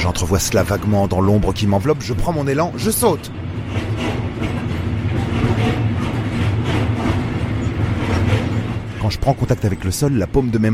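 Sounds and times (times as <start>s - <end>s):
speech: 0.0s - 4.2s, 9.1s - 10.7s
train running at speed with clickety-clack of wheels on rails: 0.0s - 10.7s.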